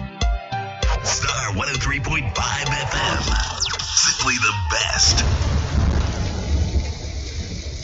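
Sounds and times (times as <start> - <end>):
speech: 1.0 - 5.8
heavy rain pouring in Greater Accra Ghana: 4.4 - 7.8
deep thunder rumbling in Greater Accra Ghana: 4.7 - 7.8.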